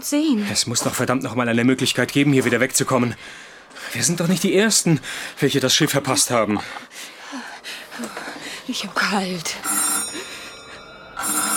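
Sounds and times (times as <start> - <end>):
speech: 0.0 - 9.7
telephone bell ringing: 9.5 - 11.5.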